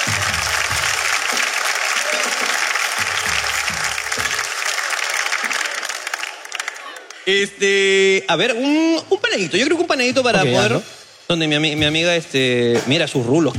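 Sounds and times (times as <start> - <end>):
audience applauding: 0.0 - 7.3
speech: 7.3 - 13.5.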